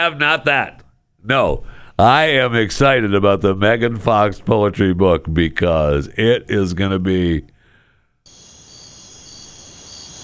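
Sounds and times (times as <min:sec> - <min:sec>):
speech: 0:00.0 - 0:07.5
chorus of crickets chirping: 0:08.3 - 0:10.2.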